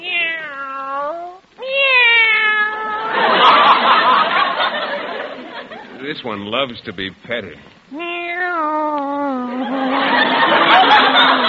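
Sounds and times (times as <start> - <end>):
cat meowing: 0.0 - 3.2, 7.9 - 9.6
laughter: 3.0 - 6.1, 9.5 - 11.4
speech: 6.1 - 8.0.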